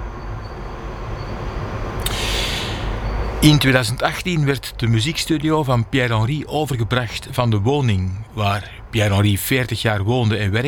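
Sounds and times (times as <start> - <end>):
Paris Metro line 5 train rumbling through Porte de Pantin station: 0.0 - 10.6
bright hiss or squeal: 0.2 - 3.4
speech: 3.4 - 10.6.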